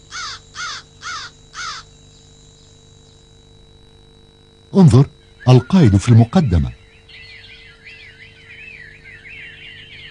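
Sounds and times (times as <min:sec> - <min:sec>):
crows cawing harshly: 0:00.1 - 0:01.9
speech: 0:04.8 - 0:06.8.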